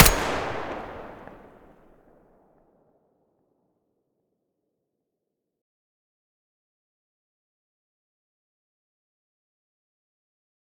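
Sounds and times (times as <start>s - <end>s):
weapon muzzle blast: 0.0s - 1.5s.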